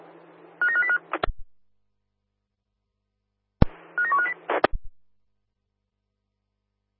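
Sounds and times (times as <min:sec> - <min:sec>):
electronic telephone keypad dialing beeps: 0:00.6 - 0:01.0, 0:04.0 - 0:04.4.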